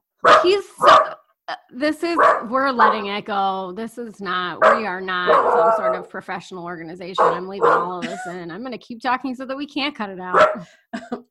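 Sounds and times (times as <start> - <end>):
upset dog barking and growling: 0.2 - 1.2, 2.0 - 3.2, 4.5 - 6.2, 7.1 - 8.2, 10.3 - 10.7
speech: 0.4 - 11.2.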